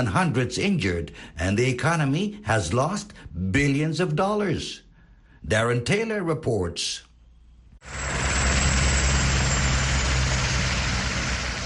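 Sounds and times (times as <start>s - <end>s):
speech: 0.0s - 4.8s, 5.4s - 7.1s, 7.8s - 8.2s
police helicopter hovering overhead: 7.8s - 11.6s.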